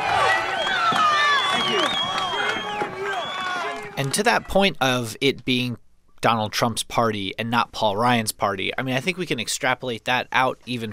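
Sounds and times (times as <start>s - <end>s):
large crowd booing and shouting at outdoor rally: 0.0s - 4.5s
whistles: 0.4s - 3.8s
speech: 4.0s - 10.9s.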